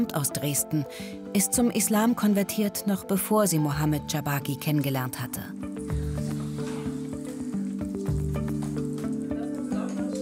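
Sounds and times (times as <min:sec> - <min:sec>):
speech: 0:00.0 - 0:05.7
falafel frying and sizzling in hot oil in a pan: 0:05.7 - 0:10.1.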